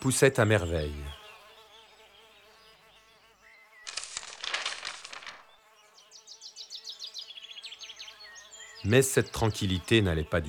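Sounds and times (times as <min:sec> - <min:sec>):
speech: 0:00.0 - 0:01.2, 0:08.8 - 0:10.4
many bees buzzing around beehives in a rooftop garden: 0:00.0 - 0:10.4.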